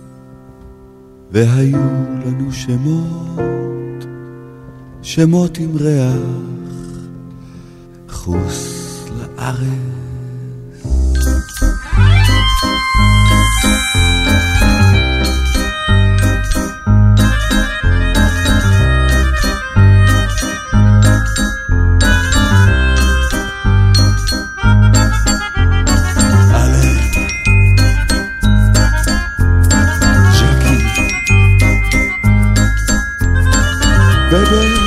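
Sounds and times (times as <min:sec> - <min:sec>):
speech: 0:01.3 - 0:04.1, 0:05.0 - 0:06.7, 0:08.2 - 0:08.8, 0:09.4 - 0:10.0
bells jingling: 0:11.0 - 0:34.8.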